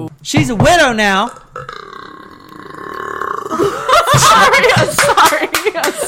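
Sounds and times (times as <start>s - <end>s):
speech: 0.3s - 1.9s, 3.6s - 6.0s
loud drawn-out burp: 1.2s - 4.0s
lively laughter: 3.5s - 6.0s.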